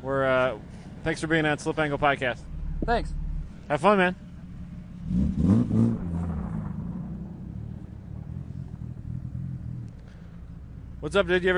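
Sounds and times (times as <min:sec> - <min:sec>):
speech: 0:00.0 - 0:04.2, 0:11.1 - 0:11.5
all-wheel-drive car on snow tires revving on ice: 0:00.8 - 0:11.5.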